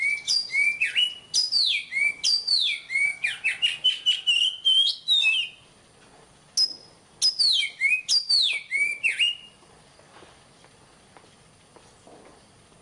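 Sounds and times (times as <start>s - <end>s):
magpie-robin singing: 0.0s - 5.6s, 6.6s - 9.6s.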